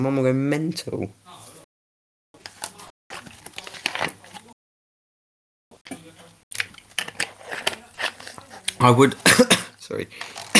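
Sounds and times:
speech: 0.0 - 1.4, 8.8 - 10.4
person choking and coughing on water: 9.2 - 9.8, 10.4 - 10.5.

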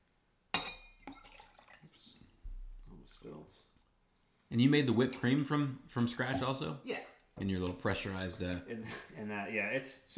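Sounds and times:
glasses clinking in a toast: 0.6 - 1.6
speech: 3.1 - 3.7, 4.5 - 10.1.

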